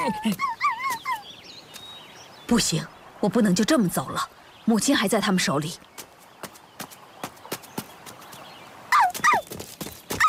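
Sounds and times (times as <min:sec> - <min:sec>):
speech: 0:00.0 - 0:00.6, 0:02.5 - 0:05.9
small dog yipping: 0:00.3 - 0:01.2, 0:08.9 - 0:09.5.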